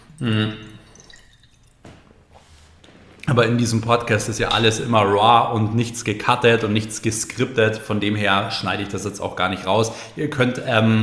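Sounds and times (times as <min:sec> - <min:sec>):
person taking a sip of water: 0:00.0 - 0:04.8
speech: 0:00.2 - 0:00.6, 0:03.4 - 0:11.0.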